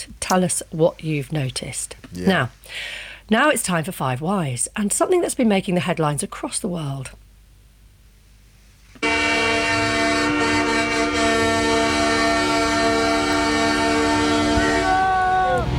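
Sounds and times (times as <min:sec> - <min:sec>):
speech: 0:00.3 - 0:07.2
many car horns honking at street protests in Ottawa, Canada: 0:09.0 - 0:15.7.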